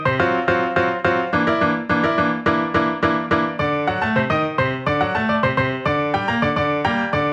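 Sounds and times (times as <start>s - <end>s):
salsa piano in G minor: 0.0s - 7.3s.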